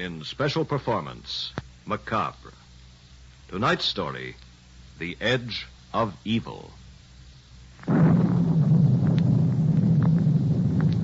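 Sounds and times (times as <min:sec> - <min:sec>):
speech: 0:00.0 - 0:02.6, 0:03.5 - 0:04.4, 0:05.0 - 0:06.8
faint wind: 0:00.0 - 0:11.0
storm thunder crack and rumble: 0:07.8 - 0:11.0.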